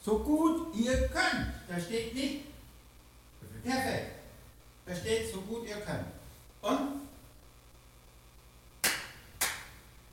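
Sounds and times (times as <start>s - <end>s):
speech: 0.0s - 2.5s, 3.6s - 4.2s, 4.9s - 7.0s
audience clapping hands in unison: 8.8s - 9.8s.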